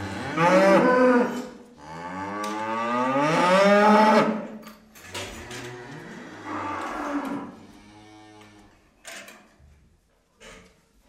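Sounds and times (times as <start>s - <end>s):
cow giving a rough moo: 0.0s - 4.4s, 5.4s - 8.6s.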